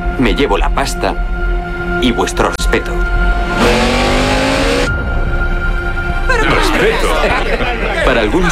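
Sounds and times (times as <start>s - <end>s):
speech: 0.2s - 4.0s, 6.8s - 8.5s
car engine roaring and revving as it accelerates in a street race: 3.2s - 5.0s
laughter: 6.3s - 8.5s.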